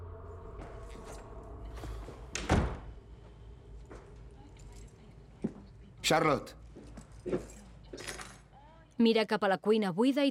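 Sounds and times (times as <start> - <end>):
low indoor hum: 0.0 - 9.1
apartment door shutting with a solid thud: 2.3 - 3.0
speech: 6.1 - 6.6, 7.2 - 7.6, 9.0 - 10.3.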